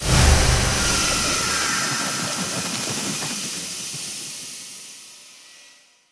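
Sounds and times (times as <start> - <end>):
arcane bolt spell cast weapon effect: 0.0 - 4.4.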